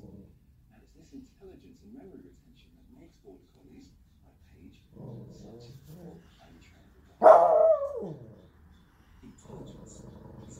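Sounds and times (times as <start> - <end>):
Spitz dog barking: 7.2 - 8.3.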